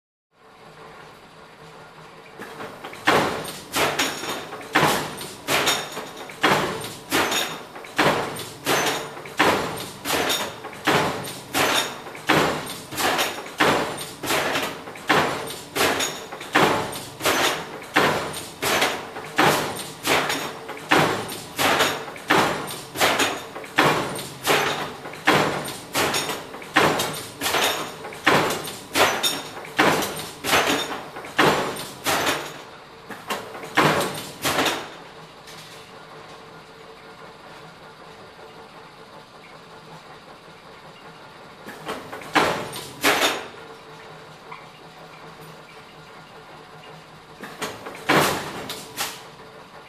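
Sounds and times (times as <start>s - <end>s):
industrial stamping press machine: 2.3s - 49.8s.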